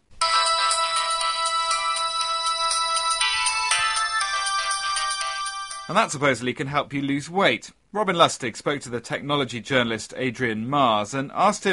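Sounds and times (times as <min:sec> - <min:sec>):
phone ringtone, bright electronic melody of quick chiming notes: 0:00.2 - 0:06.1
speech: 0:05.9 - 0:11.7.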